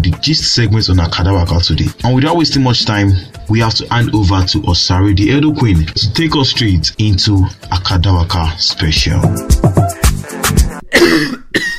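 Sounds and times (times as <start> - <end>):
speech: 0.0 - 9.9
person coughing harshly with raspy wheezy tail: 10.8 - 11.7.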